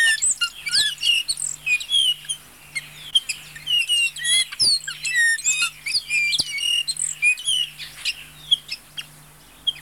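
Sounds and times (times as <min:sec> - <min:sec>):
Bay-winged cowbird chorus of overlapping chirps, whistles and squeaks: 0:00.0 - 0:09.8.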